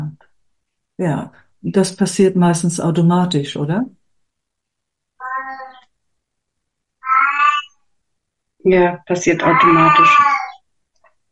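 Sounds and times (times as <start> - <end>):
speech: 1.0 - 4.0, 8.7 - 10.4
cat meowing to be let out: 5.2 - 5.9, 7.0 - 7.8, 9.4 - 10.6.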